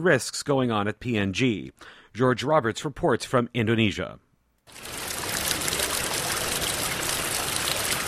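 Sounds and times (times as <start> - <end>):
speech: 0.0 - 5.0
water trickling through paddy fields in Puncak south of Jakarta Indonesia: 4.7 - 8.0.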